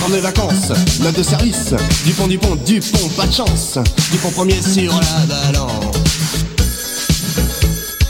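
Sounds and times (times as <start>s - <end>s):
speech: 0.1s - 6.4s
telephone ringing with electronic tones: 6.6s - 8.0s.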